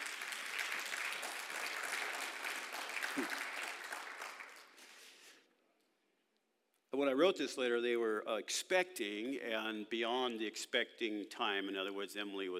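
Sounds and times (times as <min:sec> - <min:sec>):
room full of people applauding the speaker: 0:00.0 - 0:05.1
speech: 0:07.0 - 0:12.5.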